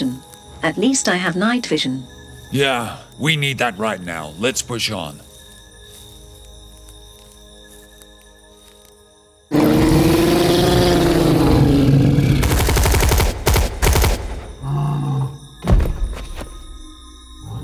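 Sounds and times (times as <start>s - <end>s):
speech: 0.6s - 5.2s
rapid loud bursts of gunfire: 9.5s - 14.9s
deep drawn-out creature roar: 9.5s - 15.5s.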